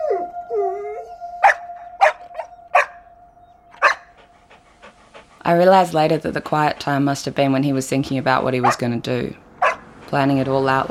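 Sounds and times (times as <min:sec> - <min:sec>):
dog whining: 0:00.0 - 0:05.5
steady tonal hum: 0:00.0 - 0:09.3
dog barking sharply: 0:01.4 - 0:03.0, 0:03.8 - 0:04.2, 0:08.6 - 0:08.9, 0:09.6 - 0:09.9
speech: 0:05.5 - 0:09.4, 0:10.1 - 0:10.8.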